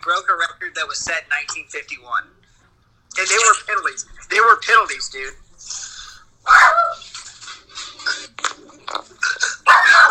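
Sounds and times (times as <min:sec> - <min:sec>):
speech: 0:00.0 - 0:02.4, 0:03.2 - 0:07.0
dog barking excitedly in high-pitched yaps and yips: 0:06.4 - 0:07.1, 0:09.6 - 0:10.1.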